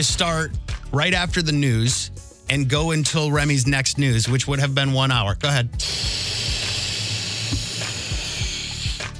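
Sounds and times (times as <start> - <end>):
speech: 0.0 - 6.5
person blowing air into a balloon: 5.8 - 9.1.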